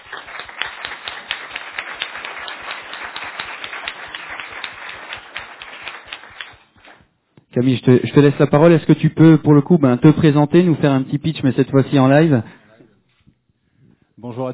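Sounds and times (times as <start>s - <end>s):
crowd applauding: 0.0s - 7.0s
speech: 7.6s - 12.6s, 14.3s - 14.5s.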